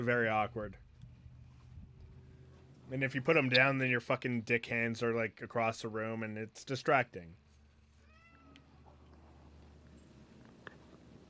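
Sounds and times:
speech: 0.0s - 0.9s, 2.9s - 7.4s
steady low rumbling hum: 0.0s - 5.9s, 7.2s - 11.2s
cat meowing: 8.0s - 8.9s.

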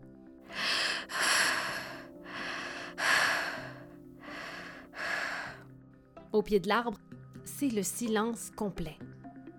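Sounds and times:
heavy breathy panting after running: 0.5s - 5.6s
speech: 6.4s - 9.1s.

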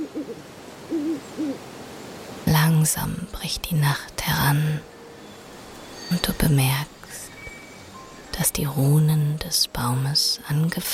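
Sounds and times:
owl hooting at night: 0.0s - 1.6s
speech: 2.7s - 4.9s, 6.1s - 7.2s, 8.4s - 10.9s.

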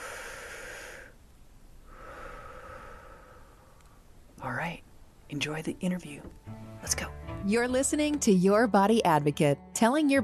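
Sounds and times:
deep breath: 0.0s - 1.2s, 1.8s - 4.0s
speech: 4.4s - 10.2s.

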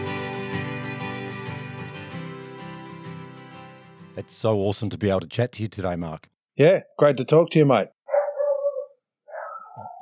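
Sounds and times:
speech: 4.2s - 8.0s
dog at home giving drawn-out whiny barks: 8.1s - 10.0s.

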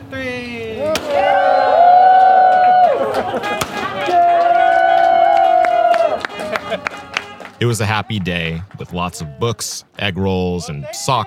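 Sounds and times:
lively crowd at a library grand opening: 0.6s - 11.2s
firecrackers popping and cracking at a library grand opening: 0.9s - 1.6s, 2.5s - 4.3s
laughter: 2.6s - 9.5s
long steady horn-like tones: 3.2s - 8.1s
speech: 7.6s - 11.2s.

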